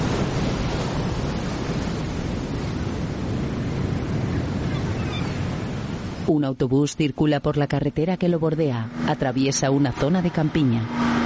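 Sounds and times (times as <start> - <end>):
sea waves crashing against a grey stone cliff: 0.0 - 6.3
windy rush: 0.0 - 11.2
speech: 6.3 - 11.2.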